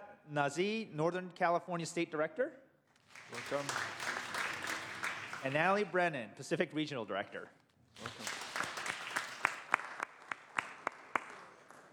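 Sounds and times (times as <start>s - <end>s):
speech: 0.3s - 2.6s, 3.3s - 4.0s, 5.4s - 8.3s
small audience applauding on a Senate floor: 3.0s - 5.8s, 8.0s - 11.9s.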